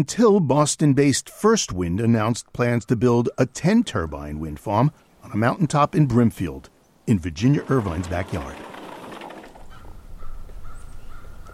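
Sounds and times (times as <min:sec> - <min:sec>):
speech: 0:00.0 - 0:08.7
crows cawing while flying overhead: 0:09.7 - 0:11.5.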